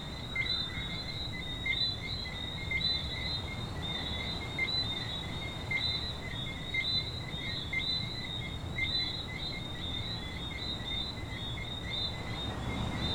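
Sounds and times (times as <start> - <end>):
coqui frogs calling at a beach in Venezuela: 0.0 - 13.1.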